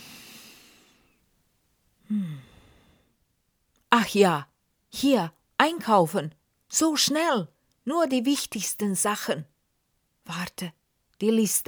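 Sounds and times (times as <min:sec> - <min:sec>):
slow deep calming breaths: 0:00.0 - 0:01.2, 0:02.0 - 0:03.2
speech: 0:04.0 - 0:09.5, 0:10.3 - 0:11.6.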